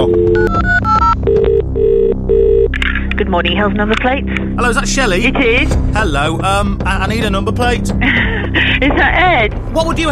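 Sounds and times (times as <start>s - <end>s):
telephone ringing with electronic warbling tones: 0.0s - 2.7s
speech: 3.3s - 10.1s
laughter: 8.0s - 9.5s.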